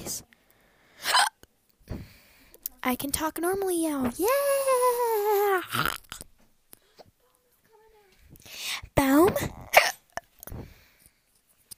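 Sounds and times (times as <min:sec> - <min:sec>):
hiccup with a short catch of breath: 0:01.0 - 0:01.4
speech: 0:02.8 - 0:06.0.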